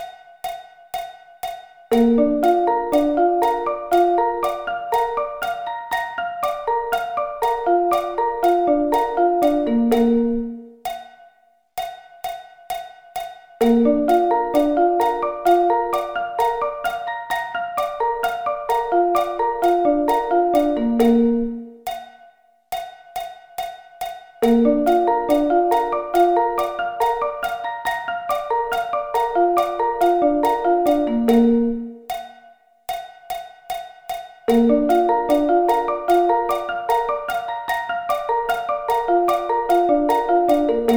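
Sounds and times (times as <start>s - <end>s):
B-flat arpeggio inversions: 1.9s - 10.8s, 13.6s - 21.7s, 24.4s - 32.0s, 34.5s - 40.9s.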